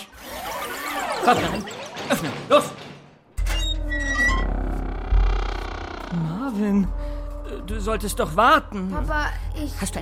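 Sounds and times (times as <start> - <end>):
door creaking slowly open with a squeaky groan: 1.0 - 6.5
speech: 1.2 - 2.8, 6.2 - 10.0.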